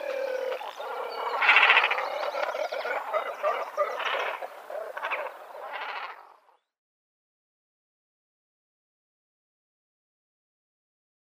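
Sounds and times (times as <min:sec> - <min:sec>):
great cormorant harsh croaking and gargling calls: 0:00.0 - 0:06.7.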